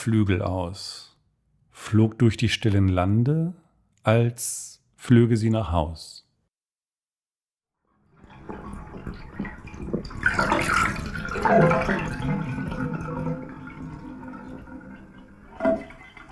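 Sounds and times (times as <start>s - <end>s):
speech: 0.0s - 1.1s, 1.8s - 6.2s, 11.4s - 12.4s
water draining from a bathtub: 8.0s - 16.2s.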